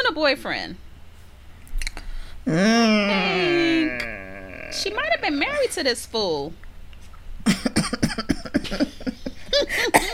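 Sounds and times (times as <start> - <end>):
speech: 0.1 - 0.9, 2.4 - 4.1, 4.8 - 6.6, 8.6 - 9.0
person laughing and coughing: 7.4 - 10.1.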